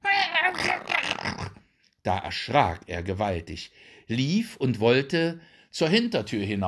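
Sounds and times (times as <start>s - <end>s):
person's voice imitating an angry cat snarling and spitting: 0.0s - 1.6s
speech: 2.0s - 6.6s.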